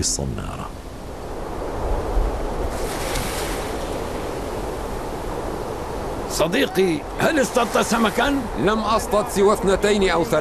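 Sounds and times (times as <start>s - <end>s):
speech: 0.0s - 0.8s, 6.3s - 10.3s
ocean surf washing against a shore in Sri Lanka: 0.7s - 10.3s
wind noise blowing across the microphone: 0.8s - 8.8s.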